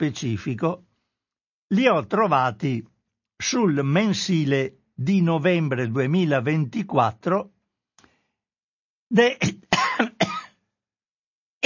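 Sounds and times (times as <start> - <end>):
speech: 0.0 - 0.9, 1.7 - 7.5, 9.1 - 9.6
person coughing: 9.4 - 10.6.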